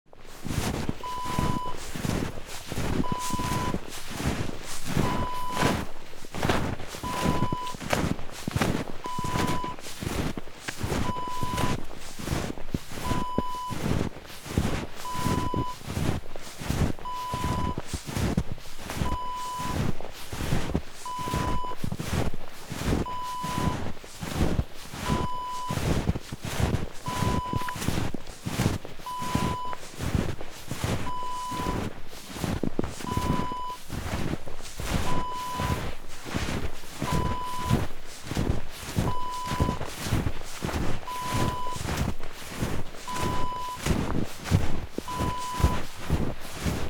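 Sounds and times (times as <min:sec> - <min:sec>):
footsteps in snow: 0:00.1 - 0:46.8.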